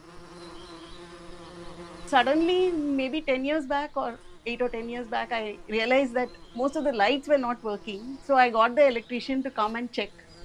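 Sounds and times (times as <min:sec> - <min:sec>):
bees buzzing in a beehive inside a wall light switch: 0:00.0 - 0:10.4
speech: 0:02.1 - 0:10.2.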